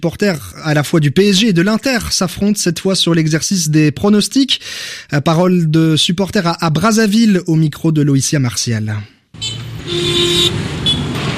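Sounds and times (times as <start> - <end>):
speech: 0.0 - 10.8
car horns honking at a busy roundabout in Brazzaville: 9.4 - 11.3
heavy road traffic engine rumble at a busy roundabout: 9.4 - 11.3.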